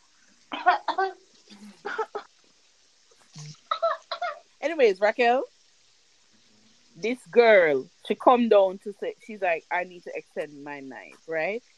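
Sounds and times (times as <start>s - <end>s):
person mimicking coughing of someone sick: 0.5s - 2.3s
speech: 4.8s - 5.5s, 7.0s - 11.7s.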